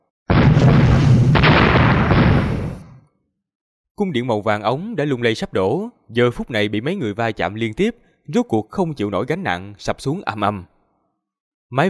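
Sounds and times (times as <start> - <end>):
loud explosion boom with rushing shockwave roar: 0.3 - 3.1
speech: 4.0 - 10.7.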